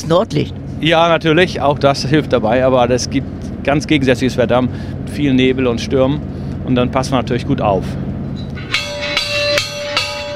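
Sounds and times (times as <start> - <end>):
speech: 0.0 - 8.0
steady underlying hum: 0.0 - 10.3
ship's bell that once called passengers to meals ringing: 8.3 - 10.3.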